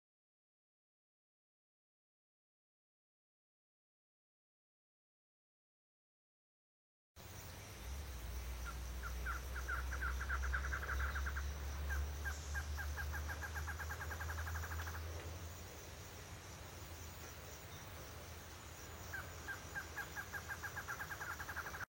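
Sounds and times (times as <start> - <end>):
choca de olho vermelho singing: 7.3 - 21.8.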